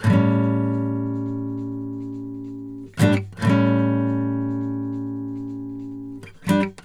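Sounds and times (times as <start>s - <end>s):
country guitar breakdown: 0.0s - 6.8s.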